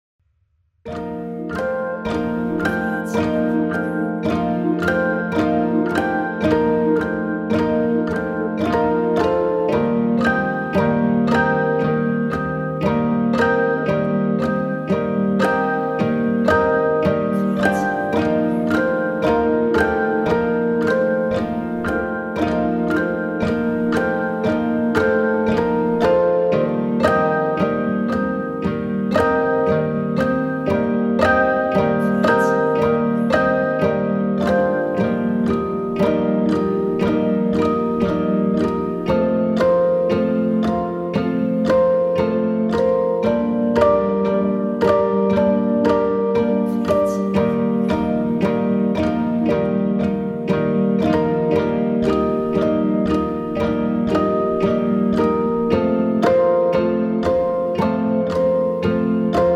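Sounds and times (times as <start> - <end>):
piano pizzicato: 0.9 - 59.5.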